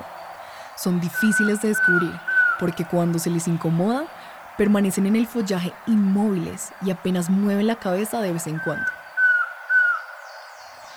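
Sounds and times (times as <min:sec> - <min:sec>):
hiss: 0:00.0 - 0:10.9
speech: 0:00.8 - 0:09.0
collared trogon calling in the Valle del Cauca: 0:01.0 - 0:02.8, 0:08.4 - 0:10.8.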